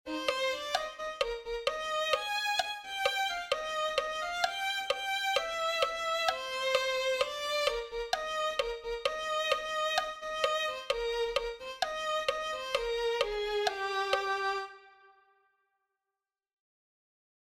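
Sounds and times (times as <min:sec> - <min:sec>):
violin melody: 0:00.0 - 0:15.4.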